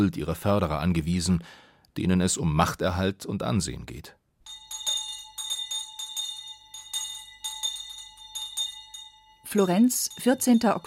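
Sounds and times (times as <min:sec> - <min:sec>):
speech: 0:00.0 - 0:04.2, 0:09.5 - 0:10.8
entrance bell ringing through hallways: 0:04.4 - 0:10.8.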